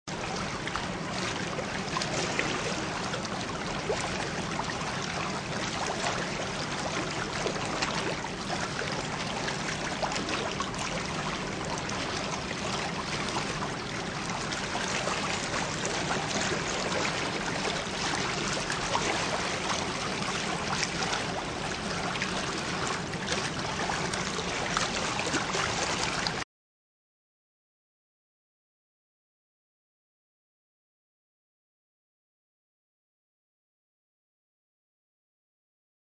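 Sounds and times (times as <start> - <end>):
flowing water of the Danube: 0.1 - 26.4.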